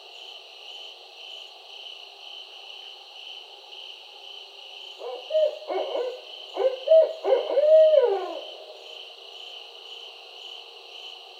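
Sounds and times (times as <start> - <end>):
barred owl hooting: 5.0 - 8.8.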